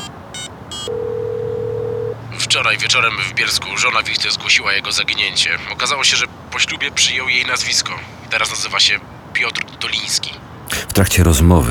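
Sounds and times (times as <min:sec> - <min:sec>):
touch-tone telephone dialing beeps: 0:00.0 - 0:02.2
speech: 0:02.5 - 0:11.6.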